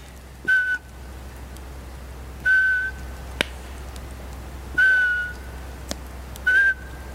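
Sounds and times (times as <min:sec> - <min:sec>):
person whistling in a forest imitating a Eurasian pygmy owl call: 0:00.5 - 0:00.9, 0:02.4 - 0:03.0, 0:04.8 - 0:05.4, 0:06.4 - 0:07.0.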